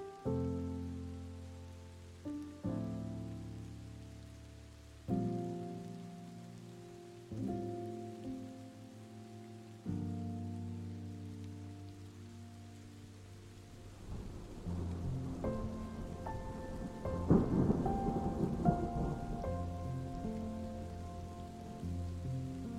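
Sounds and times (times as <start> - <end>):
slow soft sleep music of held low chords: 0.0 - 22.7
steady rain: 0.0 - 22.7.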